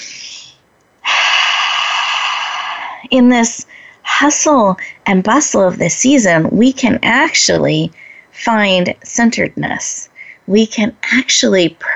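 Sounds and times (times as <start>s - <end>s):
person taking a deep breath: 0.0s - 3.0s
speech: 3.1s - 11.9s.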